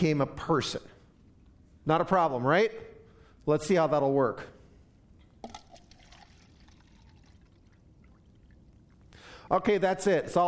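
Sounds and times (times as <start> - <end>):
speech: 0.0 - 1.0, 1.8 - 4.6, 9.5 - 10.4
liquid pouring into a container: 5.4 - 9.0.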